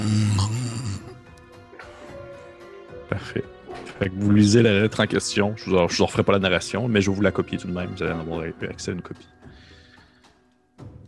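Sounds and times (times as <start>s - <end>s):
voice imitating a low rumbling snore: 0.0s - 1.2s
speech: 3.2s - 9.4s.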